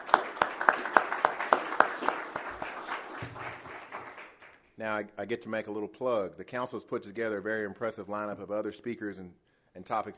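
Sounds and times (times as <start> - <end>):
small audience applauding at a speaker program: 0.0 - 4.6
speech: 4.8 - 10.1.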